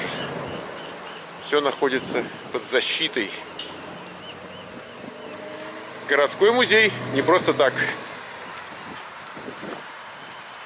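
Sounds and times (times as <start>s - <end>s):
speech: 1.5s - 3.7s, 6.1s - 8.0s
steady outdoor wind buffeting the microphone on a windy day: 1.9s - 2.7s, 3.7s - 6.1s, 6.9s - 10.4s.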